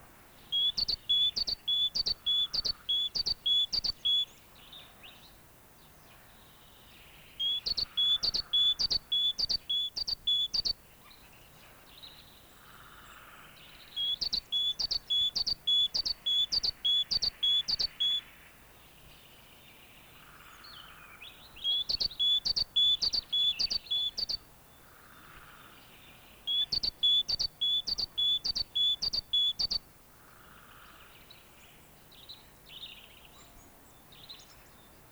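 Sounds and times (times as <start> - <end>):
great tit song: 0.5 - 4.3, 7.4 - 10.8, 13.8 - 18.4, 21.5 - 24.5, 26.2 - 29.8.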